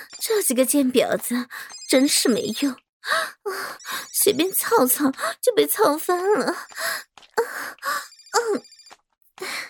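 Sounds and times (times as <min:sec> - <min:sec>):
speech: 0:00.5 - 0:07.1, 0:08.5 - 0:08.7
phone ringtone for an incoming call, bright repeating electronic melody: 0:08.1 - 0:08.9.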